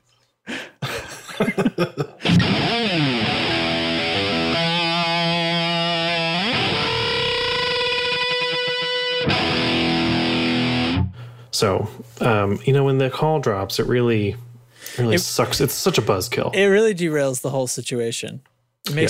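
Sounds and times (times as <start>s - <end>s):
laughter: 0.8s - 2.4s
speech: 1.4s - 2.1s, 12.5s - 19.0s
distorted fuzzy guitar through effects pedal with pitch bends and modulation: 2.2s - 11.2s.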